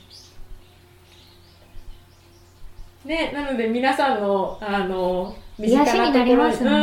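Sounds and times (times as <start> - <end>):
black-and-white Japanese tit calling at Mount Tsukuba, Japan: 0.0 - 6.6
steady low hum: 0.0 - 6.8
speech: 3.0 - 6.8.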